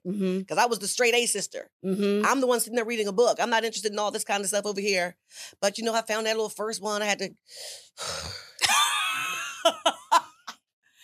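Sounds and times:
speech: 0:00.0 - 0:08.5
heavy laboured breathing: 0:07.5 - 0:08.6
laughter: 0:08.6 - 0:10.5.

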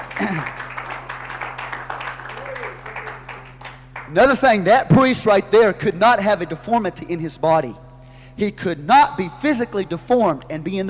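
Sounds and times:
crowd clapping hands in continuous applause: 0:00.0 - 0:04.3
speech: 0:00.2 - 0:00.6, 0:04.1 - 0:07.8, 0:08.4 - 0:10.8.

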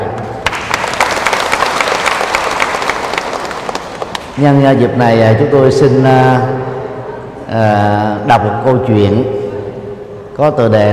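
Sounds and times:
audience applause: 0:00.4 - 0:04.4
speech: 0:04.4 - 0:06.5, 0:07.5 - 0:09.4, 0:10.4 - 0:10.9.

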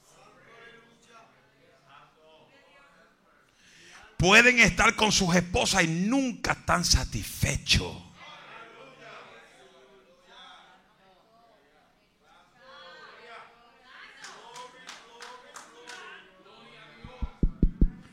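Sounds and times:
speech: 0:04.2 - 0:08.1
knocking on a door: 0:17.1 - 0:18.1.

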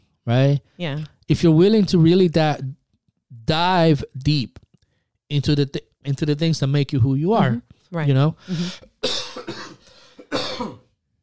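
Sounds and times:
speech: 0:00.2 - 0:02.8, 0:03.4 - 0:04.6, 0:05.3 - 0:09.2
harsh coughs: 0:08.5 - 0:10.9.

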